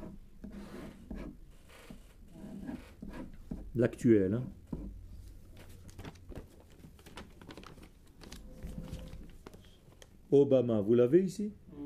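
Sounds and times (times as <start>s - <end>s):
pen scratching while handwriting a name in Hebrew script: 0.0s - 3.6s
speech: 3.8s - 4.6s, 10.3s - 11.6s.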